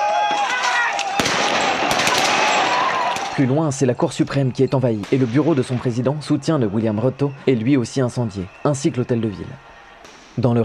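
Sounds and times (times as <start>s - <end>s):
clamour of protesters' voices during riots: 0.0s - 10.6s
police firing live bullets at protesters: 0.3s - 3.6s, 5.0s - 6.6s, 9.6s - 10.6s
speech: 3.4s - 9.7s, 10.4s - 10.6s.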